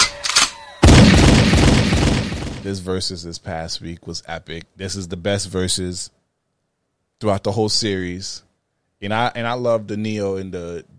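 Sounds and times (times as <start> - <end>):
gunshot sound effect with booming tail: 0.8 - 2.7
speech: 2.7 - 6.2, 7.2 - 10.9.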